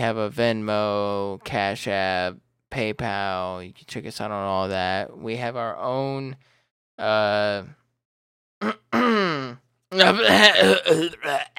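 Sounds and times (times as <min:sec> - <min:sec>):
speech: 0:00.0 - 0:07.8, 0:08.6 - 0:11.5
man clearing throat: 0:08.6 - 0:11.5.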